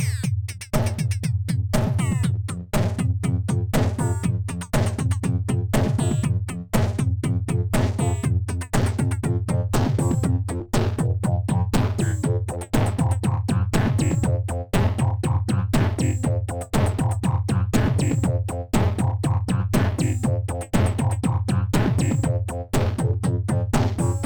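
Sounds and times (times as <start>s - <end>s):
space drum line: 0.2s - 24.2s.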